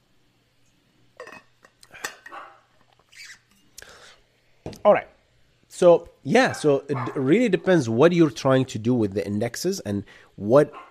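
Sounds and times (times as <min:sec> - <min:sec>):
pet dog barking: 0:02.3 - 0:02.7, 0:06.5 - 0:07.3
speech: 0:04.8 - 0:05.1, 0:05.8 - 0:10.8.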